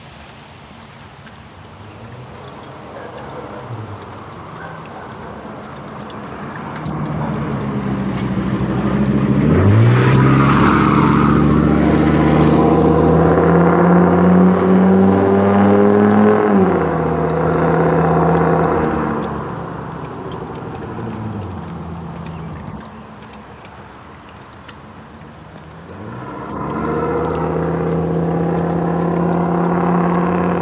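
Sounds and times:
truck engine rumbling as it accelerates and passes: 0.7s - 30.5s.

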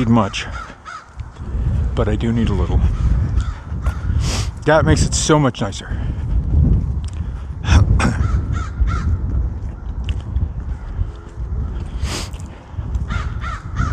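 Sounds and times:
speech: 0.0s - 0.7s, 2.0s - 3.1s, 4.7s - 6.1s
crows cawing overhead: 0.0s - 1.3s, 2.9s - 4.2s, 8.1s - 9.3s, 13.0s - 13.9s
steady low rumble of outdoor noise: 0.0s - 13.9s.

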